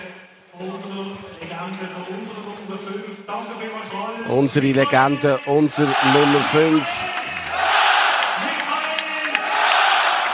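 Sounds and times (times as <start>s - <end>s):
speech: 0.6s - 7.2s
large stadium crowd cheering: 4.3s - 10.3s
thunderous stadium crowd applause: 4.4s - 10.3s
scattered shouts from stadium crowd: 5.8s - 8.5s.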